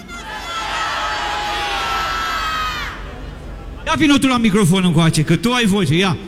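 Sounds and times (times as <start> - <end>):
large crowd with children shouting a greeting in unison: 0.0 - 3.1
speech: 3.9 - 6.2.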